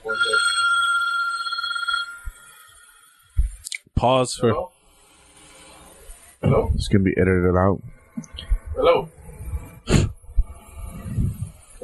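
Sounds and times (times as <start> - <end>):
work phone ringing with electronic trill: 0.0 - 3.4
speech: 4.0 - 4.8, 6.4 - 9.1.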